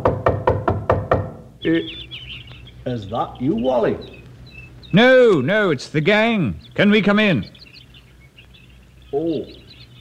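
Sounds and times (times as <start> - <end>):
knocking at a front door: 0.0 - 1.5
speech: 1.6 - 4.2, 4.9 - 7.6, 9.1 - 9.6.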